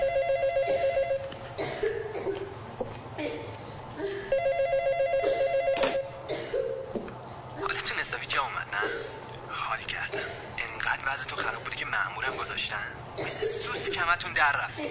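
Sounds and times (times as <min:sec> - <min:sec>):
telephone ringing: 0:00.0 - 0:01.4, 0:04.3 - 0:06.2
low hum: 0:00.0 - 0:14.9.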